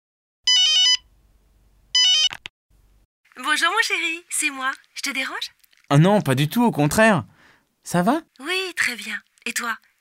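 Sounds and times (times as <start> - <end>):
warbling electronic telephone ringtone: 0.5 - 1.1, 2.0 - 2.4
speech: 3.6 - 9.9.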